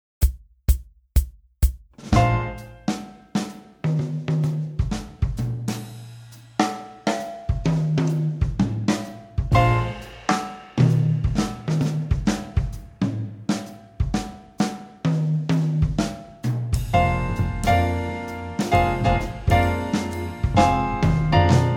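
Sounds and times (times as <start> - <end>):
swing drums: 0.0 - 21.7.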